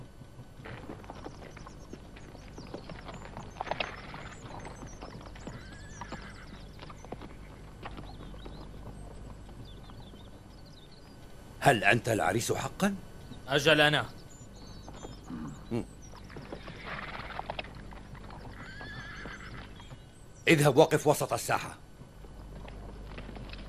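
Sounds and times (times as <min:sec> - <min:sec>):
horse hooves clip-clopping as a horse runs off: 0:00.0 - 0:11.4, 0:14.3 - 0:20.4, 0:21.8 - 0:23.6
horse whinnying: 0:05.4 - 0:07.6, 0:15.3 - 0:17.8, 0:18.4 - 0:19.8
speech: 0:11.7 - 0:14.2, 0:20.5 - 0:21.8.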